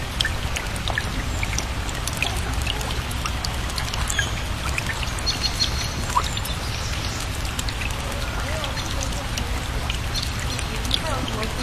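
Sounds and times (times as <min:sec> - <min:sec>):
rain pouring: 0:00.0 - 0:11.6
trickling drips: 0:00.0 - 0:11.6
birds chirping and calling: 0:04.0 - 0:11.6.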